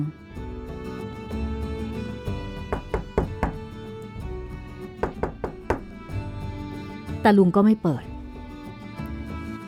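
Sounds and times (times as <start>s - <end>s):
speech: 0.0s - 0.2s, 7.2s - 8.1s
soft steady musical background: 0.0s - 9.6s
loud knocking on a door: 2.6s - 3.8s, 5.0s - 6.0s.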